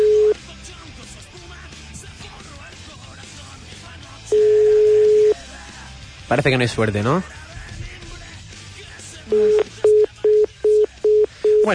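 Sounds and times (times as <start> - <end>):
telephone line tone beeps of an unanswered call: 0.0 - 0.4, 4.3 - 5.4, 9.3 - 11.7
speech: 6.3 - 7.4.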